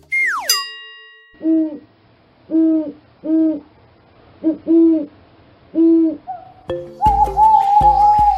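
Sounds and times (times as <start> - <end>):
falling whistle: 0.0 - 0.6, 7.0 - 8.3
owl hooting low mellow calls: 1.4 - 1.9, 2.5 - 3.8, 4.4 - 8.3.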